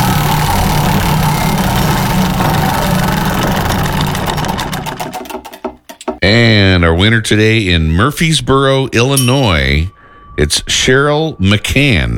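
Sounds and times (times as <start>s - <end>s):
prize wheel spinning with pointer ticking: 0.0s - 6.1s
speech: 6.3s - 12.1s.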